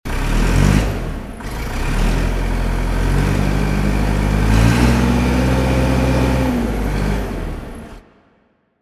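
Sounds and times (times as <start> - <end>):
tractor motor: 0.1 - 8.0.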